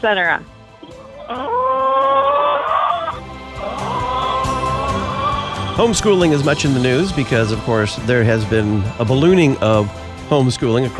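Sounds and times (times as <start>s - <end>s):
speech: 0.0s - 0.6s, 1.3s - 1.7s, 5.8s - 10.9s
chickens kept by suburban homemakers crying out: 1.0s - 5.9s.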